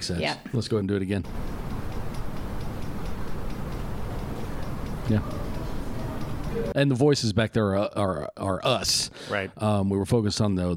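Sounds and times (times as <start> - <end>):
speech: 0.0 - 1.6, 5.1 - 5.5, 6.6 - 10.7
rhythmic ticking from a fan: 0.2 - 6.8.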